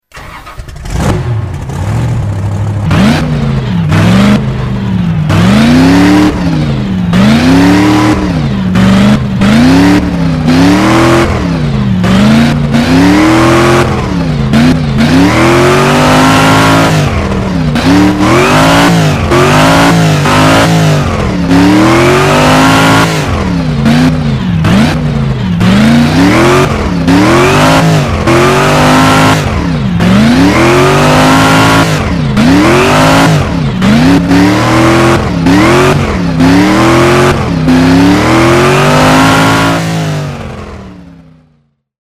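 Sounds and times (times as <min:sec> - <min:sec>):
monster truck: 0:00.0 - 0:41.9.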